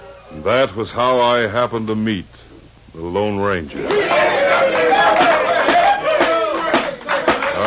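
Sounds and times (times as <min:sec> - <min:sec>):
speech: 0:00.4 - 0:04.3
excited chatter and murmuring of courtroom audience: 0:03.7 - 0:07.6
courtroom audience applause: 0:03.8 - 0:07.6.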